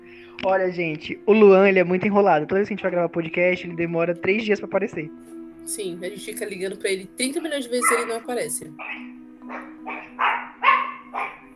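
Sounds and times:
speech: 0.4s - 9.7s
dogs barking and snarling in a rough scuffle: 7.8s - 11.5s.

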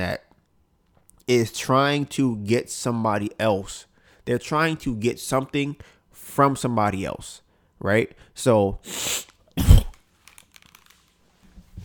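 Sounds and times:
speech: 0.0s - 0.3s, 1.3s - 9.7s
person coughing while choking on food: 9.6s - 10.0s
faint small clicks and rustles: 10.0s - 11.8s.

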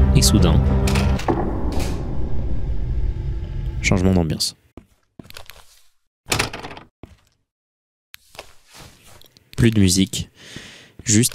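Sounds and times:
low steady rumble: 0.0s - 4.2s
speech: 0.2s - 0.8s, 3.8s - 4.6s, 9.6s - 11.3s
heavy mechanical door in a video game grinding open: 0.9s - 3.8s.

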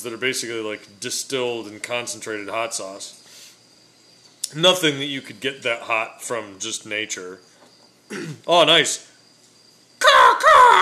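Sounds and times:
speech: 0.0s - 3.2s, 4.5s - 7.5s, 8.1s - 9.1s
person's voice imitating harsh croaking raven caws: 10.0s - 10.8s.

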